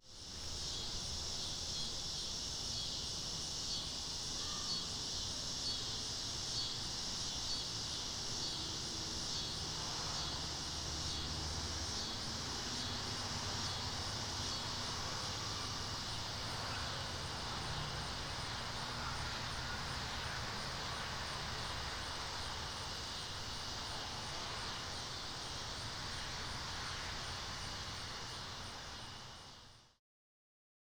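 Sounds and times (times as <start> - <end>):
summer neighborhood outdoor ambience: 0.0 - 29.9.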